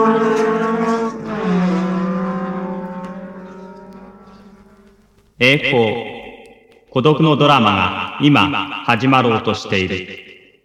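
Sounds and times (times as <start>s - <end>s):
racing car engines roaring in a motor race: 0.0s - 4.6s
speech: 5.4s - 6.1s, 6.9s - 10.2s.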